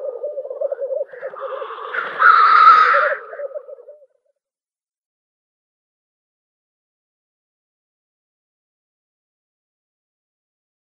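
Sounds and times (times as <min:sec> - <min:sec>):
male black grouse bubbling cooing display: 0:00.0 - 0:04.2.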